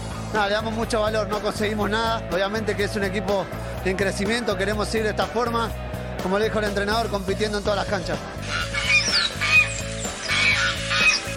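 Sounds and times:
speech: 0.3 - 8.7
geese honking: 8.4 - 11.3.

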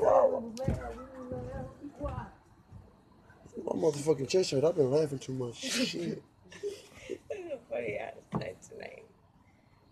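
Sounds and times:
dog barking: 0.0 - 0.6
speech: 3.8 - 6.6.

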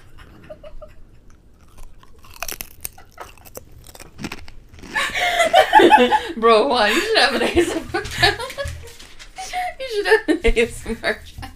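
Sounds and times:
laughter: 0.0 - 1.2, 5.0 - 10.4
biting and chewing a long crunchy chip: 1.3 - 5.2
speech: 5.9 - 8.4, 9.9 - 11.3.

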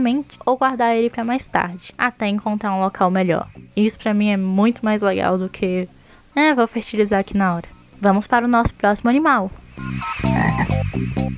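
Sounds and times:
speech: 0.0 - 11.3
chorus of frogs croaking: 10.0 - 10.9.

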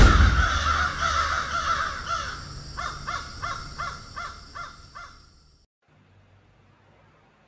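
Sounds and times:
crows cawing with harsh calls: 0.0 - 5.4.

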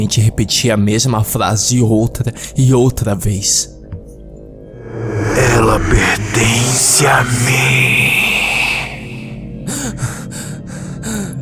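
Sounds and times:
speech: 0.0 - 3.8, 5.6 - 8.2
person panting on waking from a nightmare: 4.8 - 11.4.

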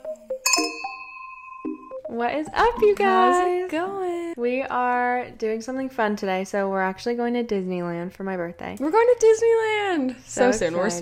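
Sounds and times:
glasses clinking in a toast: 0.4 - 1.6
speech: 2.1 - 10.9.

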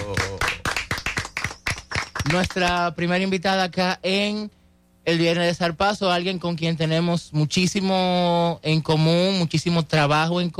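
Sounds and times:
small group clapping: 0.0 - 3.0
speech: 2.3 - 10.5.

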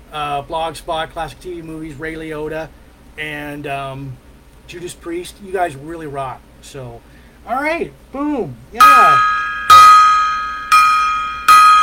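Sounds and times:
speech: 0.1 - 9.4
gong being struck: 8.8 - 11.8.

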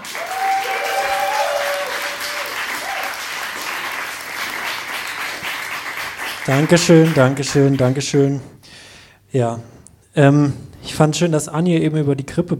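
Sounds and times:
cheers: 0.0 - 5.4
crowd at a comedy show applauding: 0.0 - 8.4
speech: 6.5 - 8.5, 9.3 - 12.5.

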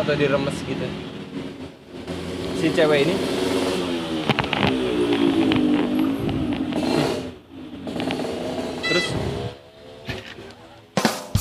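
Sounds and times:
speech: 0.0 - 1.2, 2.6 - 3.6, 8.9 - 9.6
motorcycle engine passing by: 1.2 - 10.1.

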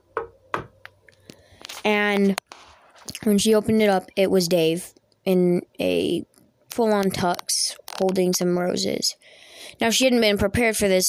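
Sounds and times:
knocking on a door: 0.1 - 0.7
speech: 1.8 - 2.4, 3.1 - 11.0.

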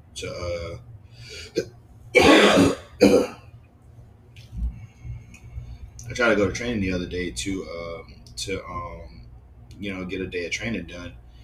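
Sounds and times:
speech: 0.2 - 3.4, 6.2 - 9.2, 9.8 - 11.2
person clearing throat: 1.5 - 3.4
harsh coughs: 2.2 - 3.4
low rumble: 4.4 - 7.7.

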